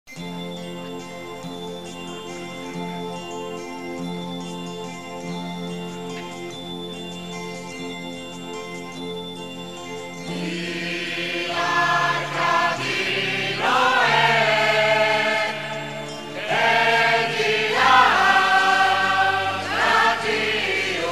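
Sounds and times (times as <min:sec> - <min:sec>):
people singing songs to the Madonna in a procession: 0:10.3 - 0:21.0.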